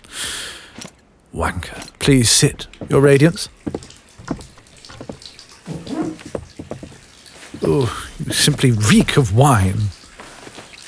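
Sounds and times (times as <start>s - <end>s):
speech: 1.4s - 3.8s, 7.7s - 10.0s
water splashing and sloshing in a bath as someone bathes: 2.5s - 10.8s.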